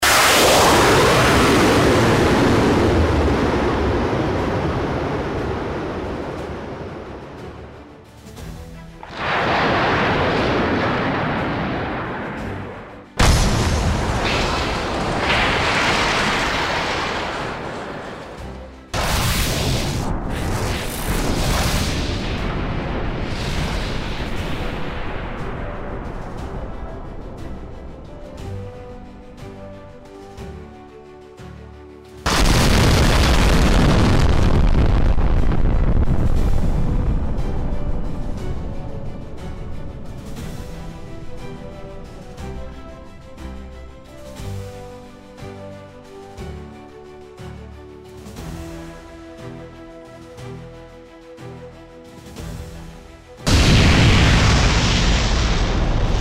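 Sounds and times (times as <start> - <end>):
missile launch: 0.0 - 6.7, 9.0 - 26.9, 32.2 - 42.9, 53.4 - 56.1.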